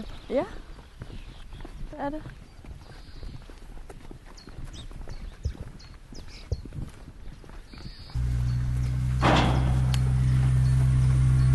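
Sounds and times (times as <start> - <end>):
Icelandic horse hooves clip-clopping: 0.0 - 11.5
speech: 0.3 - 0.7, 2.0 - 2.4
low hum: 8.2 - 11.5.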